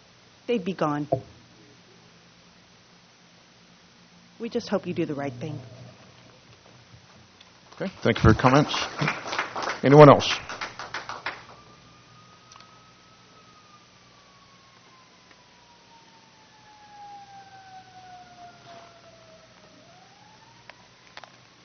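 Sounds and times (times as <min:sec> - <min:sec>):
quiet room hum: 0:00.0 - 0:21.6
speech: 0:00.5 - 0:01.4, 0:04.4 - 0:05.8, 0:07.8 - 0:10.5
faint knocks: 0:01.1 - 0:01.4
siren wailing outside: 0:01.1 - 0:01.4, 0:04.1 - 0:07.3, 0:09.8 - 0:21.6.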